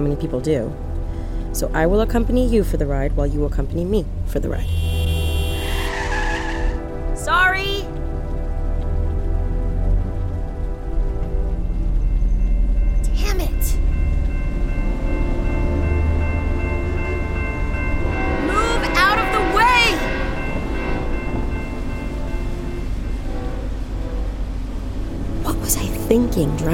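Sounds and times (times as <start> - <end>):
speech: 0.0 - 0.9, 1.5 - 4.9, 26.4 - 26.7
steady low road rumble: 0.0 - 26.7
train passing close to a moving car: 0.0 - 26.7
whining warbling screech of metal: 4.7 - 6.8.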